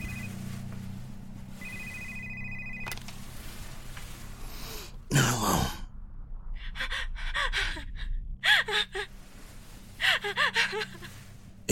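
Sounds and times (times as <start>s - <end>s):
phone ringing with a high electronic tone: 0.0s - 0.4s, 1.6s - 3.1s
low constant hum: 0.0s - 11.7s.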